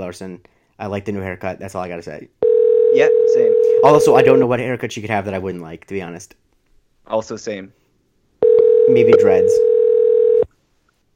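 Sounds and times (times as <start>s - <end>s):
speech: 0.0s - 6.4s, 7.1s - 7.8s, 8.9s - 9.8s
telephone dial tone: 2.4s - 4.4s, 8.4s - 10.5s.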